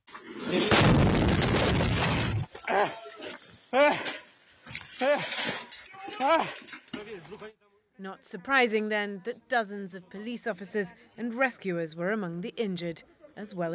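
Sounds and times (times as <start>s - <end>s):
speech: 0.5s - 1.2s, 2.8s - 3.0s, 3.7s - 4.2s, 6.2s - 13.7s
missile explosion from the second strike of a double-tap attack on a Ukrainian city: 0.7s - 2.5s
several people shouting: 5.9s - 6.6s.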